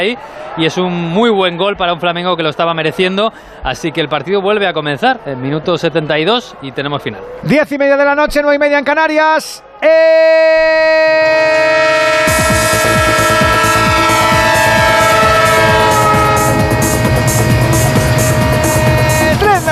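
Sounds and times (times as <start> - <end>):
speech: 0.0 - 12.2
train horn blaring in a radio football jingle: 11.3 - 19.6.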